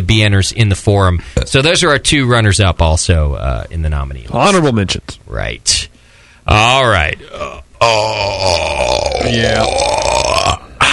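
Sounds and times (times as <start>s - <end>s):
speech: 0.1s - 5.9s, 6.5s - 10.1s
long loud drawn-out burp: 7.3s - 10.9s.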